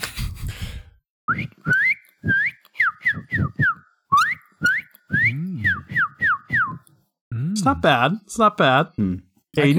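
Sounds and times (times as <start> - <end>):
speech: 1.3 - 2.4, 7.6 - 9.7
person whistling with the mouth: 1.3 - 6.9.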